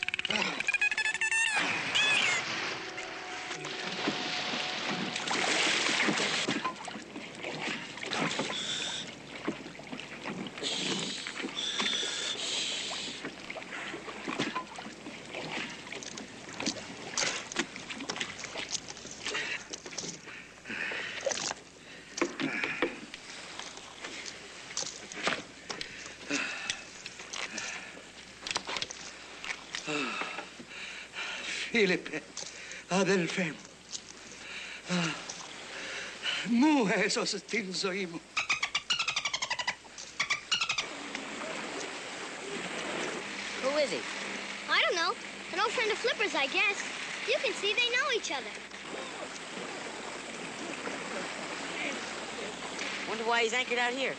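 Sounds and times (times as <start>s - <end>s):
rowboat gliding through water with sloshing and splashing: 0.0s - 54.1s
speech: 31.8s - 32.3s, 32.9s - 33.6s, 36.5s - 38.2s, 45.8s - 48.8s, 53.2s - 54.1s.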